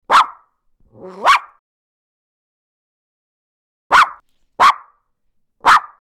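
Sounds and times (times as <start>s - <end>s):
dog barking: 0.1s - 1.6s, 3.9s - 5.0s, 5.6s - 5.9s.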